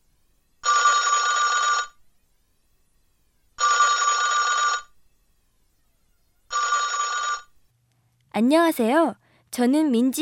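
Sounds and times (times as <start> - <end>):
telephone ringing with electronic trill: 0.6 - 2.0, 3.6 - 4.9, 6.5 - 7.6
speech: 8.4 - 10.2.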